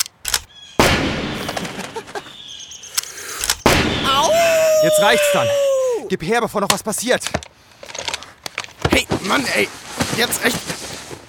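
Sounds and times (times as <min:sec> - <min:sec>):
handgun fired casually: 0:00.0 - 0:02.1, 0:03.4 - 0:04.3
speech: 0:05.0 - 0:07.5, 0:09.2 - 0:10.8.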